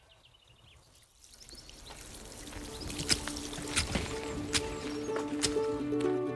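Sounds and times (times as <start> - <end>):
boiled water pouring over basil leaves in a vessel: 0.9 - 5.8.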